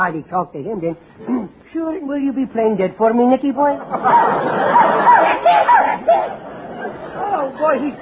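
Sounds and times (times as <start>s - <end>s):
speech: 0.0s - 6.5s, 7.4s - 8.0s
steady murmur of noise: 0.0s - 8.0s
laughter: 3.8s - 8.0s
male Irish setter yelping and whimpering: 4.1s - 6.4s.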